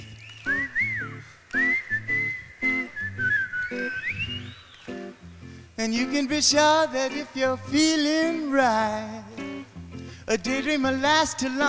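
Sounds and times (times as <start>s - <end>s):
person whistling a bright wavering tune with sliding notes: 0.0s - 5.1s
speech: 5.8s - 9.2s, 10.3s - 11.6s.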